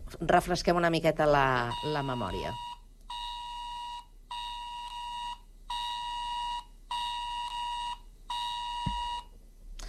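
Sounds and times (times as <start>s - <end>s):
speech: 0.2s - 2.7s
mobile phone emergency alert tone, harsh buzzing blare: 1.6s - 9.3s.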